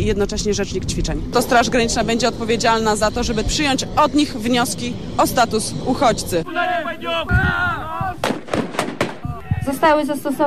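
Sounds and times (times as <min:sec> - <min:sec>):
speech: 0:00.0 - 0:08.2, 0:09.6 - 0:10.4
flash-bang stun grenades exploding during a border guard training exercise: 0:08.2 - 0:09.3.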